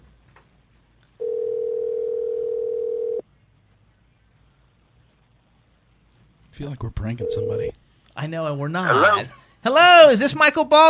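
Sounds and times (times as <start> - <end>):
telephone dial tone: 1.2 - 3.2
speech: 6.6 - 10.8.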